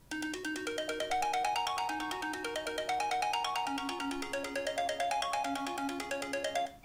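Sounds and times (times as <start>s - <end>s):
iPhone 5 ringtone: 0.1s - 6.8s.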